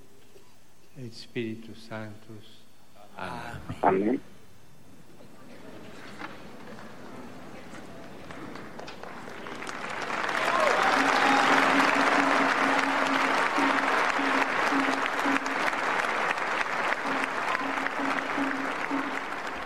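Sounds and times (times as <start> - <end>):
faint tonal hum: 0.0 - 19.6
speech: 1.0 - 2.6, 3.2 - 4.3
large crowd applauding: 7.9 - 19.6.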